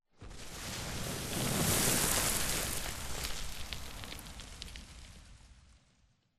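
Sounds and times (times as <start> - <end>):
explosion debris: 0.2 - 6.2.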